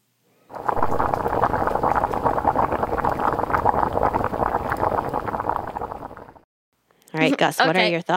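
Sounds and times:
rice boiling in a pot: 0:00.5 - 0:06.4
speech: 0:07.2 - 0:08.1.

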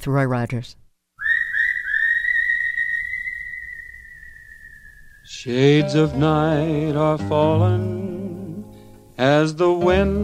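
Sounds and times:
speech: 0:00.0 - 0:00.8, 0:05.3 - 0:08.6, 0:09.2 - 0:10.2
whistled melody opening a western song: 0:01.2 - 0:06.3.

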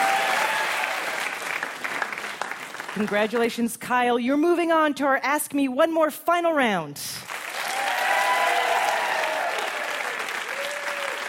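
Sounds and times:
audience applauding on a puzzle game show stage: 0:00.0 - 0:03.4, 0:07.2 - 0:11.2
speech: 0:03.0 - 0:07.2.

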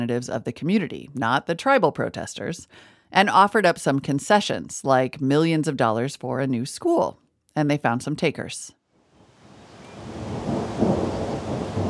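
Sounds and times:
speech: 0:00.0 - 0:08.8
rain: 0:09.0 - 0:11.8
thunder rumbling low: 0:09.2 - 0:11.8
steady hailstorm outdoors heard from under a school awning: 0:09.8 - 0:11.8.

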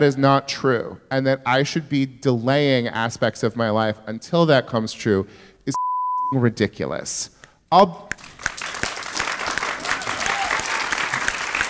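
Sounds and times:
speech: 0:00.0 - 0:08.2
audience clapping: 0:08.1 - 0:11.6
person shouting: 0:10.2 - 0:10.7.

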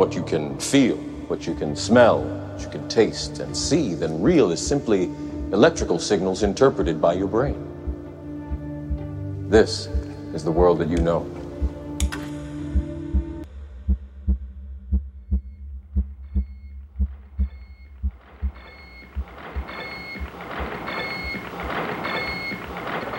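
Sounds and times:
speech: 0:00.0 - 0:07.7, 0:09.5 - 0:11.4
SAGE computer heartbeat-like thumping pulses: 0:12.8 - 0:23.1.

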